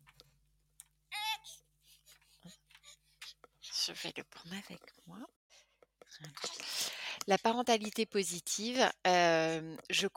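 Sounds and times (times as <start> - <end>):
baby fussing and whimpering as it wakes up: 1.1 - 4.3
speech: 3.9 - 5.4, 6.2 - 6.6, 7.2 - 10.1.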